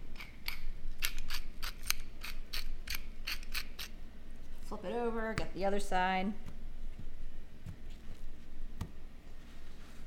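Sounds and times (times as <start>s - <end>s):
pepper mill grinding black pepper onto a burger patty: 0.2s - 3.9s
speech: 4.7s - 6.5s.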